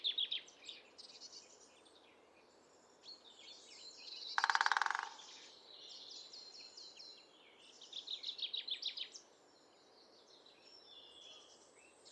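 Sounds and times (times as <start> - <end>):
songbirds twittering and trilling: 0.0 - 12.1
great spotted woodpecker drumming: 4.4 - 5.2.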